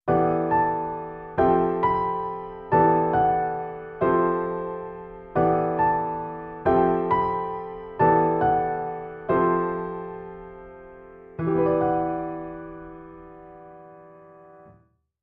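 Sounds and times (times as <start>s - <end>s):
jazzy piano waltz: 0.1s - 14.7s.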